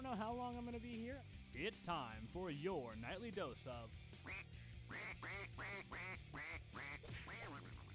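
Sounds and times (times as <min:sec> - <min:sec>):
speech: 0:00.0 - 0:07.9
duck quacking: 0:04.2 - 0:07.9.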